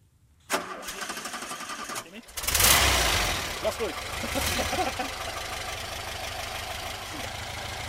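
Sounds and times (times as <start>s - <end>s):
old VW bus engine starter cranking outdoors: 0.5s - 3.7s
old VW bus engine roaring and idling roughly: 0.5s - 7.8s
laughter: 3.6s - 5.4s.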